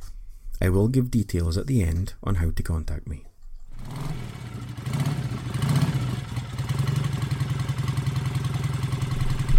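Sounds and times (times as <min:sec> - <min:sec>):
speech: 0:00.6 - 0:03.3
engine rumbling and revving with a chugging pulse: 0:03.7 - 0:09.5.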